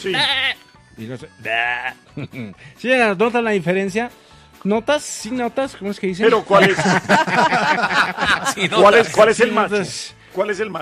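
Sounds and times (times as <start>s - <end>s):
speech: 0.0s - 0.4s, 1.0s - 10.8s
voice imitating a goat bleating: 0.0s - 0.6s, 1.4s - 2.1s
laughter: 6.3s - 9.6s.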